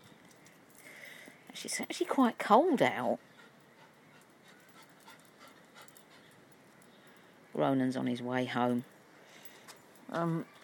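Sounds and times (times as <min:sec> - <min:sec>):
speech: 0:01.6 - 0:03.3, 0:07.6 - 0:08.9, 0:10.1 - 0:10.6
dog panting outdoors on a cold day: 0:03.0 - 0:06.9.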